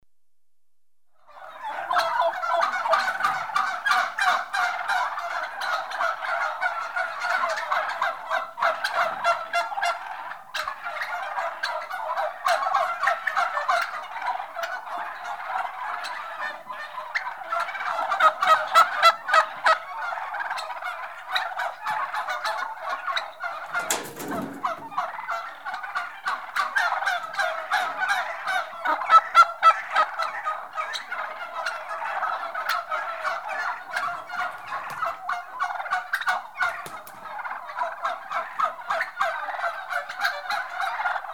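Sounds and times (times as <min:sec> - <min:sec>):
livestock turkey hens: 0:01.2 - 0:41.3.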